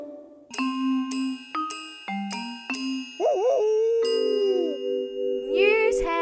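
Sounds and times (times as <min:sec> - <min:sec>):
bright ringing chime notes of a joke alarm sound effect: 0:00.5 - 0:06.1
sustained tone: 0:02.4 - 0:05.9
warbling dog-like howl: 0:03.2 - 0:04.9.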